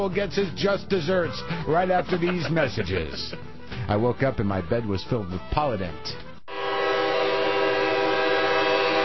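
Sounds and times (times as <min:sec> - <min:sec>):
speech: 0:00.0 - 0:06.3
laughter: 0:01.5 - 0:03.6
train horn blast approaching a railroad crossing: 0:06.5 - 0:09.0.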